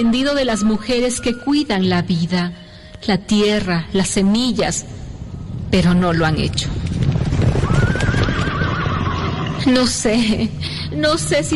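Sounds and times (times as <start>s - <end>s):
speech: 0.0s - 5.0s, 5.7s - 6.9s, 9.7s - 11.5s
horses galloping in the distance: 5.8s - 10.4s
horse whinny: 7.6s - 9.7s.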